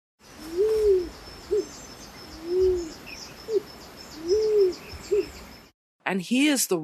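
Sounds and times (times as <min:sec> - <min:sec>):
rose-crowned fruit dove calling: 0:00.3 - 0:05.6
speech: 0:06.1 - 0:06.8.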